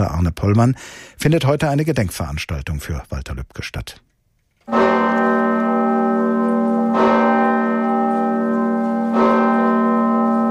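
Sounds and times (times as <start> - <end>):
speech: 0.0 - 4.1, 4.7 - 5.4
deep heavy church bell tolling: 4.7 - 10.5.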